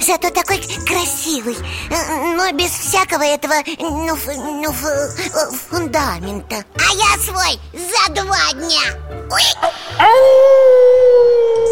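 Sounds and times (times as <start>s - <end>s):
speech: 0.1s - 10.8s
wolf howling: 10.0s - 11.6s.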